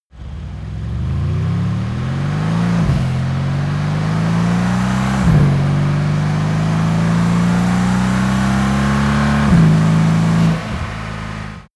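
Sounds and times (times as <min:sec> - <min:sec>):
Mercedes AMG C63 S car accelerating: 0:00.1 - 0:11.7.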